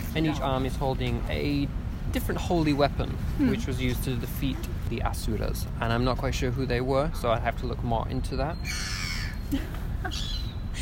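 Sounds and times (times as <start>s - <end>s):
speech: 0.2s - 10.7s
crow cawing: 8.6s - 9.4s.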